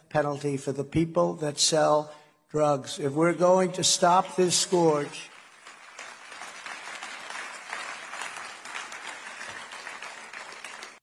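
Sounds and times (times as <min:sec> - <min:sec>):
speech: 0:00.1 - 0:05.3
subdued audience applause at a political speech: 0:04.4 - 0:11.0.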